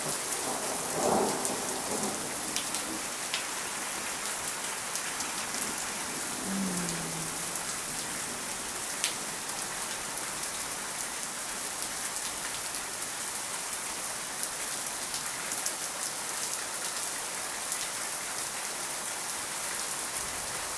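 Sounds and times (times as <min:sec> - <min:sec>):
steady dense rain: 0:00.0 - 0:20.7
soft thunder rumbles: 0:00.4 - 0:03.1, 0:05.5 - 0:08.6.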